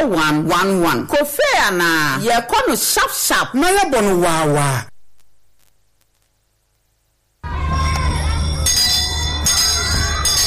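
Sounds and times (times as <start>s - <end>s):
speech: 0.0s - 4.9s
school bell ringing: 8.2s - 10.4s.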